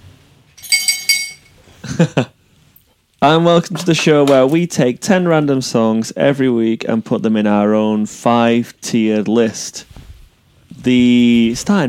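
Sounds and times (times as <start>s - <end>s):
small drinking glass clinking: 0.6s - 1.6s
speech: 2.0s - 2.4s, 3.2s - 10.0s, 10.8s - 11.8s.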